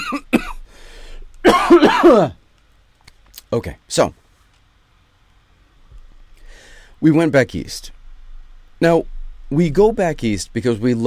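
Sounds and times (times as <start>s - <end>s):
person coughing in a raspy hacking fit: 0.0s - 0.7s, 1.4s - 2.4s
speech: 2.0s - 2.4s, 3.5s - 4.2s, 7.0s - 8.0s, 8.8s - 11.0s.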